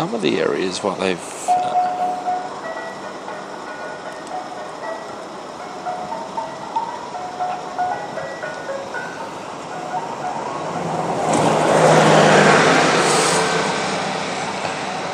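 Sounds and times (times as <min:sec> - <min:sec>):
speech: 0:00.0 - 0:01.9
ice cream van and car passing on a London road: 0:00.0 - 0:15.1
ice cream van tinkling chime melody on a London road: 0:01.5 - 0:11.1.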